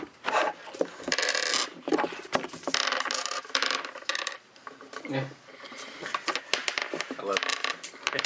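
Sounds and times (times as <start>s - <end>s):
dice rattling and clattering across a hard surface: 0.7s - 5.0s, 6.1s - 8.2s
speech: 5.1s - 5.4s, 7.2s - 7.6s.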